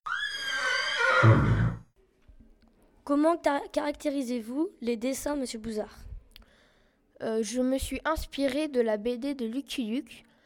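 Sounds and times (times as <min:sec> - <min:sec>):
horse whinnying: 0:00.0 - 0:01.9
speech: 0:01.2 - 0:01.5, 0:03.1 - 0:06.1, 0:07.2 - 0:10.3
horse snort: 0:01.2 - 0:01.8.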